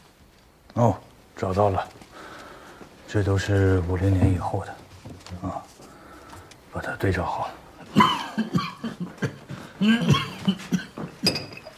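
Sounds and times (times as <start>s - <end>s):
speech: 0.8s - 2.0s, 3.1s - 4.8s, 6.8s - 8.5s, 9.8s - 11.4s
man's strained breaths: 2.0s - 3.1s, 5.7s - 6.7s
man coughing in a harsh fit: 7.8s - 11.7s.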